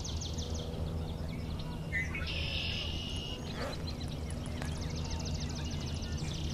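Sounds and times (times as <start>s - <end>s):
red-winged blackbird calls: 1.1s - 6.5s.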